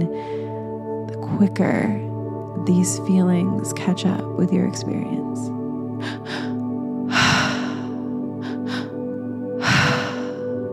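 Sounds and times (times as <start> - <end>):
long deep breathwork breaths: 0.1 - 0.8, 6.0 - 10.7
speech: 1.3 - 6.3.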